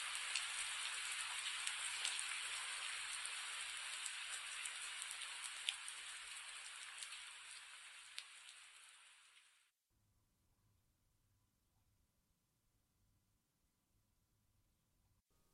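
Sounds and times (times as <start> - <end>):
steady rain falling on a hard surface: 0.0 - 9.7.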